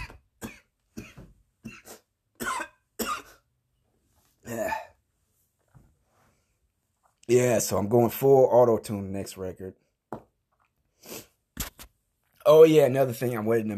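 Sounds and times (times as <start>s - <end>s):
person with an irritable throat coughing: 0.0s - 3.5s, 4.4s - 5.0s
speech: 7.3s - 9.8s, 12.5s - 13.7s.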